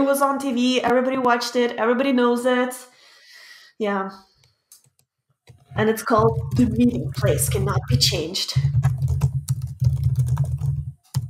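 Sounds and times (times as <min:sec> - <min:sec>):
speech: 0:00.0 - 0:02.9, 0:03.8 - 0:04.3, 0:05.8 - 0:09.2
rapid typing on a computer keyboard while messaging: 0:06.2 - 0:11.2.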